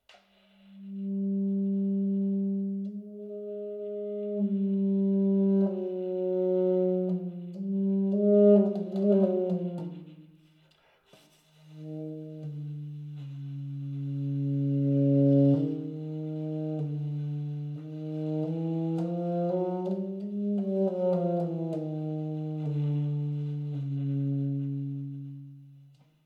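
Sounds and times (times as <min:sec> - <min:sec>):
alto saxophone subtone played pianissimo in the low register: 0:00.1 - 0:26.0.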